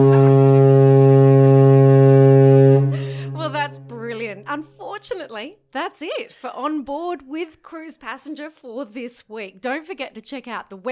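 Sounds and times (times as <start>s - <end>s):
deep loud foghorn blast: 0.0s - 4.6s
speech: 5.0s - 10.9s.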